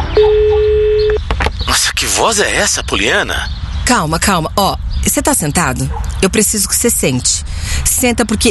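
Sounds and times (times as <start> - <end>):
telephone ringing tone: 0.2 - 1.2
speech: 2.2 - 8.4.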